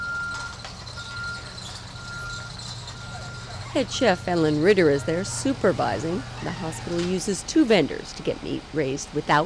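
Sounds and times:
refrigerated truck diesel engine rumble: 0.0 - 9.4
refrigerated truck reversing beeps at a hospital kitchen loading dock: 0.0 - 9.4
speech: 3.7 - 9.4.

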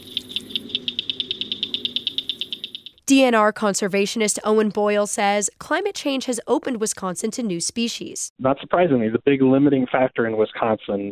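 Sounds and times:
Blanchard's cricket frog calling with sharp high clicks: 0.0 - 3.1
speech: 3.1 - 11.0.

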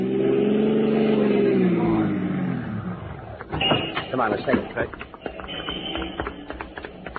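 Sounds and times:
car engine revving hard as the car swerves: 0.0 - 3.5
speech: 4.2 - 5.1.

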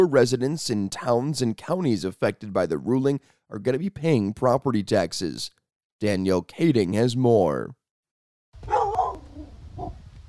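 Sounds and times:
speech: 0.0 - 7.8
black lab pit bull mix barking at the door of a home: 8.6 - 10.0.

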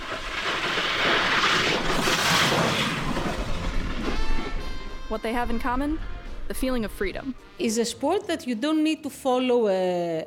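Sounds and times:
kite racers on skis and snowboards carving across ice: 0.0 - 5.8
speech: 5.1 - 10.2.

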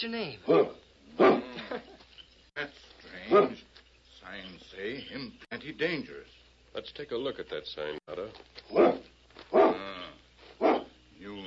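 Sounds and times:
speech: 0.0 - 1.4, 4.3 - 9.1
dog barking: 0.4 - 1.6, 3.3 - 3.7, 8.7 - 9.9, 10.6 - 11.0.

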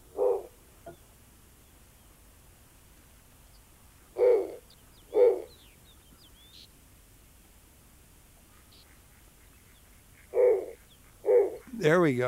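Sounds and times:
snowy owl hooting: 0.0 - 0.6, 4.1 - 5.6, 8.5 - 11.8
faint steady hiss: 0.0 - 12.2
speech: 11.8 - 12.2.

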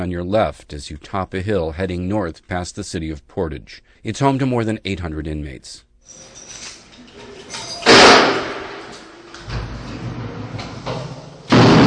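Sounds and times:
speech: 0.0 - 6.4
heavy prison doors slamming shut: 6.2 - 11.8.

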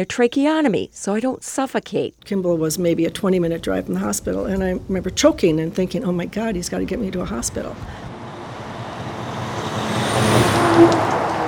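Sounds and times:
speech: 0.0 - 8.0
heavy logging truck rumbling by: 3.0 - 11.4
brief squealing truck brake tone: 7.8 - 11.4.

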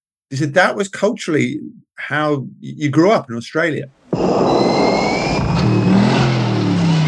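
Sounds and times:
speech: 0.3 - 4.9
V8 car engine revving: 4.1 - 7.0.

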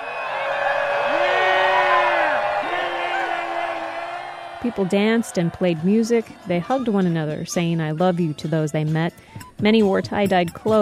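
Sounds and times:
whoops and yells: 0.0 - 6.4
large crowd cheering outdoors: 0.0 - 7.5
speech: 4.6 - 10.8.

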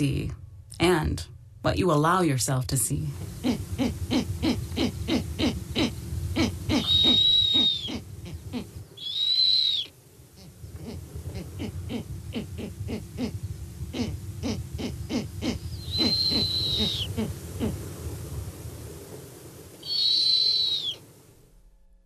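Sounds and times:
speech: 0.0 - 4.3
owl in southern Wisconsin hooting: 3.4 - 17.8, 19.8 - 21.0.

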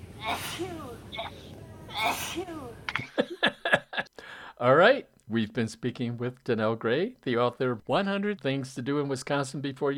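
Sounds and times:
person sneezing: 0.2 - 2.6
speech: 0.2 - 3.6, 4.6 - 9.9.

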